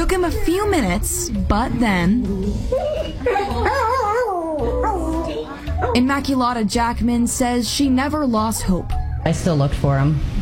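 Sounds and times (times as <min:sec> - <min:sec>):
speech: 0:00.1 - 0:04.7, 0:05.8 - 0:10.4
dog whimpering and yipping at reunion with owner: 0:02.7 - 0:06.0, 0:08.4 - 0:09.4.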